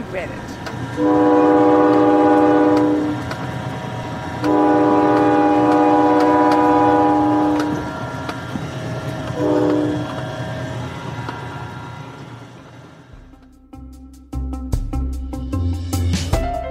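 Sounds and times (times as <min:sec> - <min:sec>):
train rumbling past: 0:00.0 - 0:13.5
speech: 0:00.1 - 0:01.6
train horn blasts: 0:00.9 - 0:03.4, 0:04.3 - 0:08.0, 0:09.3 - 0:10.2
music: 0:13.2 - 0:16.6.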